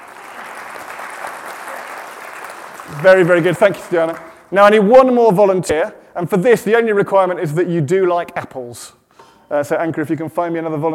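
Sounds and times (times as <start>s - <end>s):
audience applause during a church sermon: 0.0s - 4.4s
speech: 2.9s - 10.9s.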